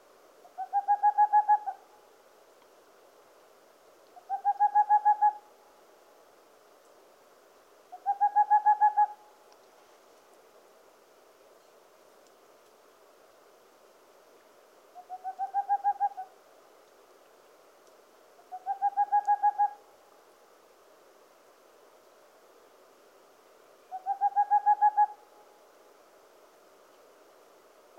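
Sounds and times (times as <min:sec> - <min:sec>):
boreal owl calling: 0:00.4 - 0:01.9, 0:04.2 - 0:05.5, 0:07.9 - 0:09.3, 0:15.0 - 0:16.4, 0:18.4 - 0:19.9, 0:23.9 - 0:25.4.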